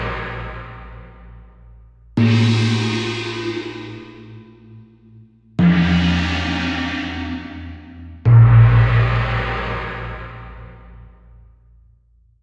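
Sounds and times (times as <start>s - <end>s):
synthesized China gong: 2.2s - 10.7s.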